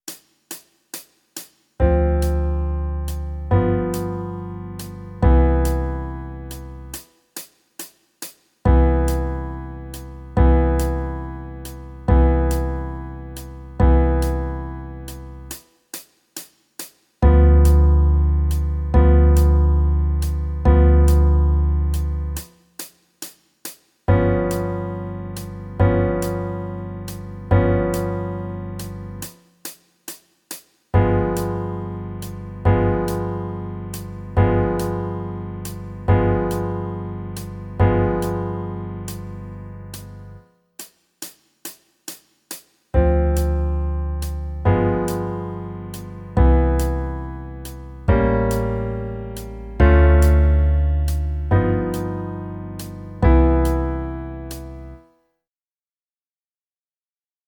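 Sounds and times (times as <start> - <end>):
jazz backing music: 1.8 - 7.0, 8.7 - 15.6, 17.2 - 22.5, 24.1 - 29.4, 31.0 - 40.4, 43.0 - 55.0.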